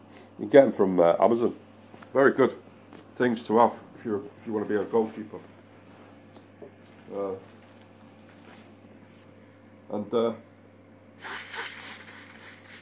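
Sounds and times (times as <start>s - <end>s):
speech: 0.4s - 5.5s, 7.1s - 7.5s, 9.9s - 10.5s
person blowing nose: 11.2s - 12.7s.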